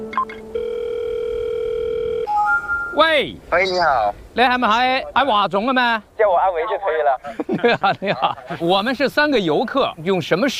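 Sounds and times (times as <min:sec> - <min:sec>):
telephone dial tone while placing a call: 0:00.2 - 0:02.3
speech: 0:03.0 - 0:10.5
laughter: 0:07.2 - 0:08.8.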